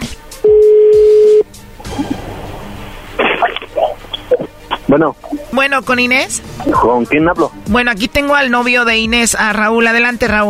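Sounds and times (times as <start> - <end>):
telephone tone as a call comes in: 0.4 - 1.4
speech: 5.0 - 10.4.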